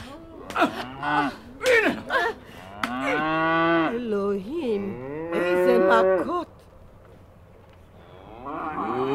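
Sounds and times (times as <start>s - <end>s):
speech: 0.5s - 1.4s
cow mooing: 0.8s - 1.4s, 2.7s - 4.1s, 4.7s - 6.3s, 8.0s - 9.1s.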